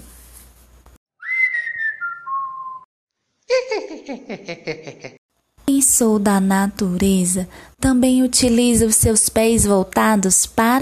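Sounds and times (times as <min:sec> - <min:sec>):
long sliding whistle dropping in pitch: 0:01.2 - 0:02.9
laughter: 0:03.5 - 0:05.2
speech: 0:03.9 - 0:05.2, 0:05.8 - 0:10.7.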